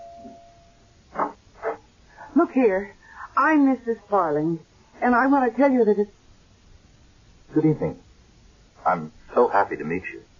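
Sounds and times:
doorbell buzzing: 0.0 - 1.0
speech: 2.5 - 6.2, 7.6 - 8.0, 8.8 - 10.3.

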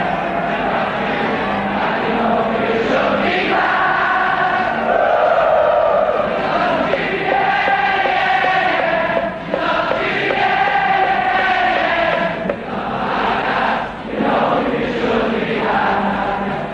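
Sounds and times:
soccer stadium crowd chanting: 0.0 - 16.7.

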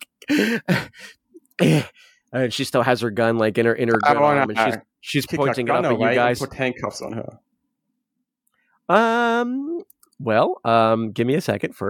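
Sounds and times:
voice imitating a woman gasping for breath while lying on the ground: 0.2 - 2.0
speech: 0.3 - 7.5, 8.9 - 11.8.

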